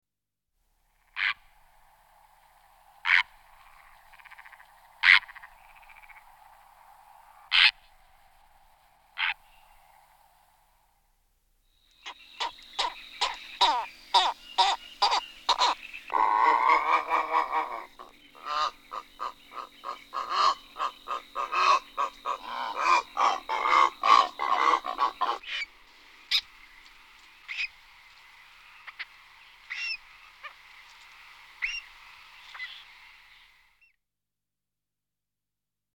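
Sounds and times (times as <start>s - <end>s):
purple heron Ardea purpurea calling: 3.1s - 6.2s, 12.0s - 26.8s, 27.4s - 27.9s, 28.7s - 30.6s, 31.6s - 32.9s.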